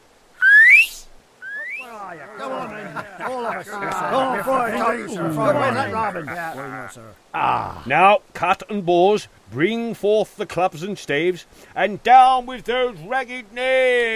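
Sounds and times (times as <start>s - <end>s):
loud sharp rising whistle: 0.4s - 1.9s
crowd of voices in excited chatter: 1.4s - 7.5s
crowd laughing: 1.5s - 7.7s
speech: 2.1s - 14.1s.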